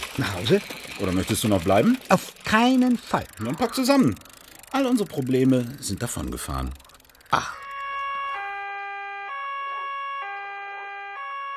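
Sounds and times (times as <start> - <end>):
speech: 0.2 - 7.6
police car siren wailing in a two-tone pattern: 7.3 - 11.5.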